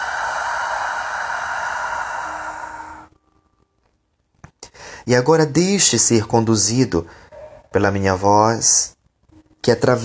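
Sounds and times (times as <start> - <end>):
deep breath in and out: 0.0 - 3.2, 4.7 - 5.0
speech: 5.0 - 9.0, 9.6 - 10.0.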